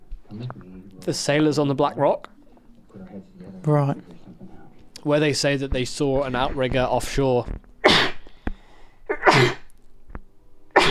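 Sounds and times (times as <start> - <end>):
speech: 0.3 - 2.3, 3.1 - 4.1, 5.0 - 7.7, 9.4 - 9.6
loud sharp sneezes: 7.8 - 8.2, 9.1 - 9.7.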